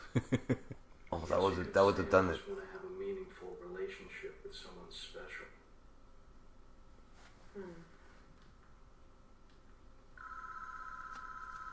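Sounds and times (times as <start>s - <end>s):
speech: 0.2s - 2.6s
telephone ringing with a steady electronic trill: 10.2s - 11.7s.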